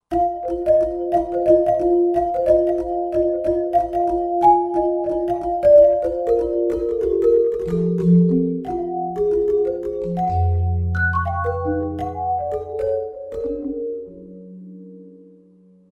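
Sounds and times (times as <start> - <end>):
jegogan playing: 0.1 - 15.1.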